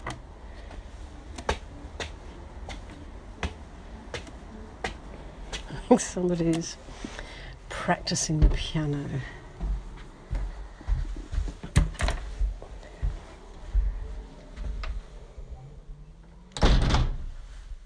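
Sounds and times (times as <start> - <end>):
low rumbling background: 0.0 - 11.6, 12.2 - 17.8
speech: 5.9 - 7.2, 7.9 - 9.4
door rattling thud: 16.6 - 17.4.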